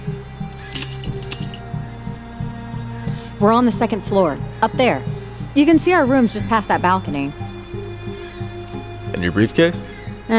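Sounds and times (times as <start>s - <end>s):
keys jangling as they are caught: 0.5s - 1.6s
speech: 3.4s - 7.4s, 9.2s - 10.3s.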